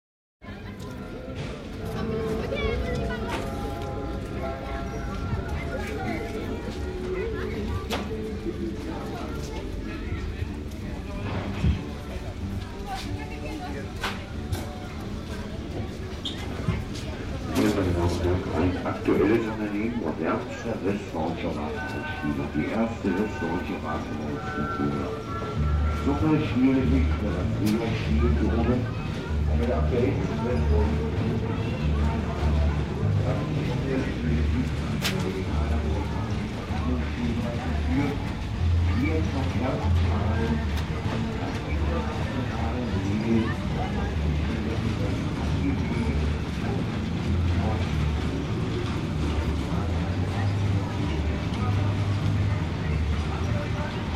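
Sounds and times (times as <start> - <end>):
amusement park midway rides: 0.4 - 54.1
fair public address announcements: 0.4 - 54.1.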